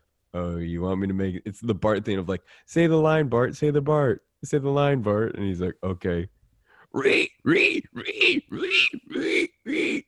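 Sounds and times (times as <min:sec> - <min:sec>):
speech: 0:00.3 - 0:10.0
person imitating pig oinking grunts: 0:06.9 - 0:10.0.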